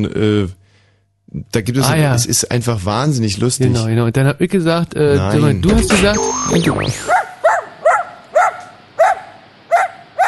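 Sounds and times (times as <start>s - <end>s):
speech: 0.0s - 0.6s, 1.3s - 7.2s
dog barking: 7.1s - 10.2s.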